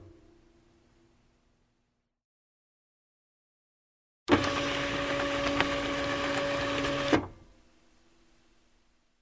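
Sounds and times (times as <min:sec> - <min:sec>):
printer feeding lines and page feed: 0:04.3 - 0:07.4.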